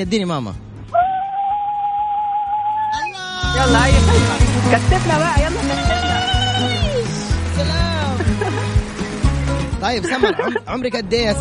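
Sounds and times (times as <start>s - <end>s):
speech: 0.0s - 0.6s, 3.6s - 6.0s, 9.8s - 11.3s
mother's high zaghrouta ululation through a thin tinny phone line: 1.0s - 3.8s
laughter: 3.4s - 11.0s.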